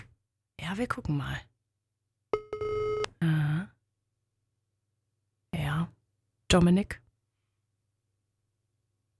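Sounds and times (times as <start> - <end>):
speech: 0.7 - 1.5, 6.5 - 7.0
phone ringback tone over a speakerphone: 2.4 - 3.1.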